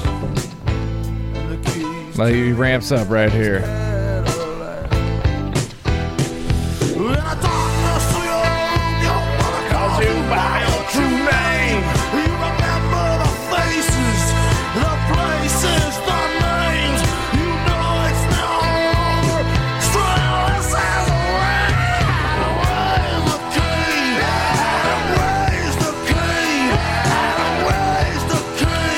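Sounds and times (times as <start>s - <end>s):
distorted guitars: 0.0s - 28.9s
speech: 2.2s - 3.8s
male rock singer yelling and screaming: 7.4s - 28.9s.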